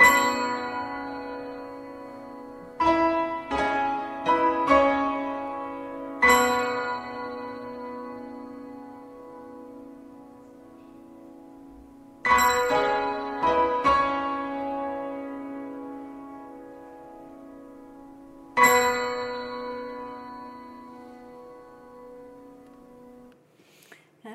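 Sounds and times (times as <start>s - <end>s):
bells ringing at end of ballet music: 0.0s - 9.6s, 12.2s - 14.8s, 18.5s - 22.3s.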